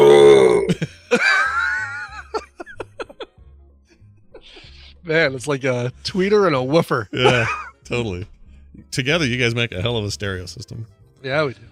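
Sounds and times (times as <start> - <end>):
man burping: 0.0 - 1.0, 7.2 - 7.7
person chuckling: 0.5 - 3.4, 4.4 - 4.9, 7.2 - 7.8
speech: 5.1 - 11.7.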